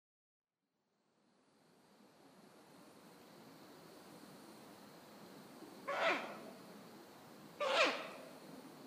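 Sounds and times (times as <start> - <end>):
background hiss: 0.8 - 8.8
Ural owl screeching: 5.8 - 6.4, 7.6 - 8.3.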